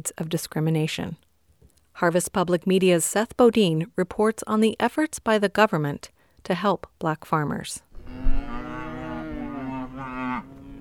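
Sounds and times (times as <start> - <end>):
speech: 0.0 - 1.2, 2.0 - 8.2
cow mooing: 8.0 - 10.8.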